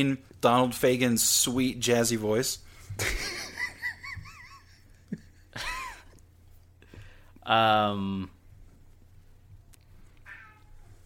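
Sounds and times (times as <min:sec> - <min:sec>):
speech: 0:00.0 - 0:03.5, 0:07.5 - 0:08.4
steady low hum: 0:00.0 - 0:11.0
laughter: 0:03.0 - 0:06.1
cat meowing: 0:10.2 - 0:11.0.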